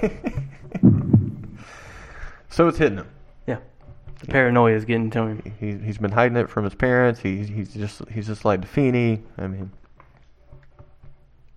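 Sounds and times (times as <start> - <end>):
speech: 0.0 - 0.4, 2.6 - 9.8
voice imitating a heartbeat with deep thumps: 0.8 - 1.6.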